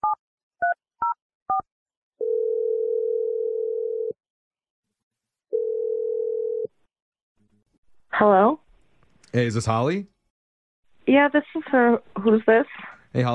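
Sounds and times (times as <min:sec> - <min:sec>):
telephone ringback tones on an outgoing call: 0:02.2 - 0:04.2, 0:05.5 - 0:06.7
speech: 0:08.2 - 0:08.6, 0:09.3 - 0:10.2, 0:11.1 - 0:13.3.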